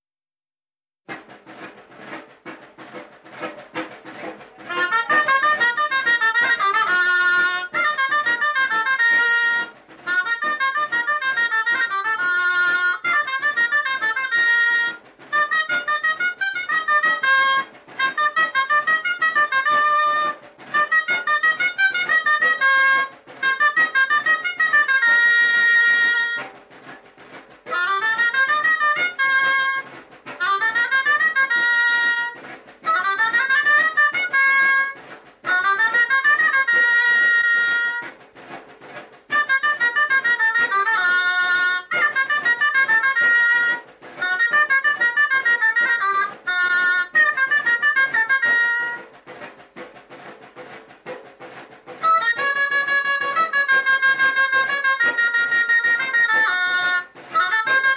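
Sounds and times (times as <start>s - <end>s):
traditional entradilla dance music: 1.0s - 57.9s.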